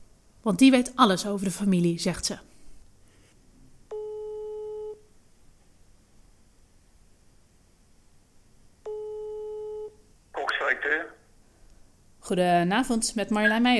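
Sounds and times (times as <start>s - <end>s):
speech: 0.4s - 2.5s, 12.3s - 13.7s
long steady telephone ringback tones while calling: 3.9s - 5.1s, 8.8s - 10.0s
voice answering the phone call: 10.4s - 11.3s.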